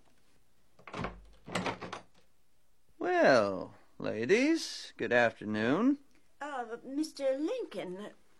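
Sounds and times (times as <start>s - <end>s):
door rattling and scraping as it is unlatched and swung open: 0.8s - 2.2s
speech: 4.2s - 6.1s, 6.7s - 8.2s.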